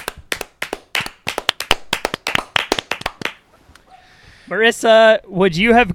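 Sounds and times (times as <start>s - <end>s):
small group clapping hands in celebratory applause: 0.0s - 3.4s
speech: 4.5s - 5.9s.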